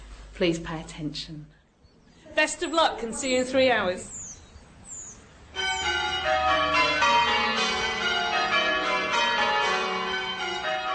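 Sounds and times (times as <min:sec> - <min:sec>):
speech: 0:00.4 - 0:01.6, 0:02.4 - 0:04.2
eight church bells ringing in rounds from highest to lowest: 0:05.4 - 0:10.9.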